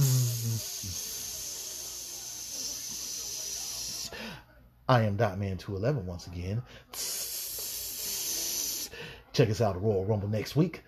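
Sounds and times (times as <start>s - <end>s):
voice making sizzling hiss with low hummed tone: 0.0s - 4.2s, 6.9s - 9.0s
speech: 4.9s - 7.3s, 9.4s - 10.8s.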